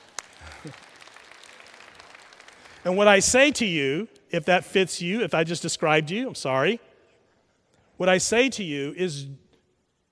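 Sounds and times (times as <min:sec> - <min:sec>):
church congregation applause during a sermon: 0:00.0 - 0:02.8
speech: 0:00.6 - 0:00.9, 0:02.8 - 0:06.9, 0:08.0 - 0:09.4.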